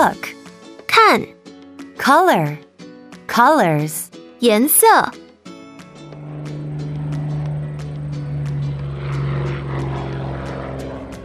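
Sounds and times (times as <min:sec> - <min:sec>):
speech: 0:00.0 - 0:00.3, 0:01.0 - 0:01.4, 0:02.0 - 0:02.7, 0:03.3 - 0:05.2
propeller airplane flying overhead: 0:05.5 - 0:11.2.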